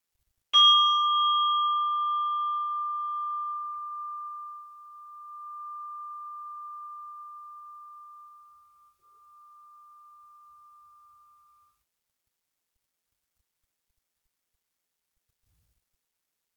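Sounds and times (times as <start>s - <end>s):
meditation bell ringing: 0.6s - 8.2s.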